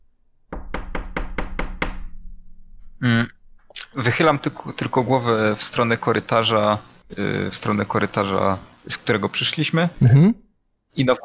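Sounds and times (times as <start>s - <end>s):
firm knocking on a door: 0.5s - 2.9s
speech: 3.0s - 11.2s.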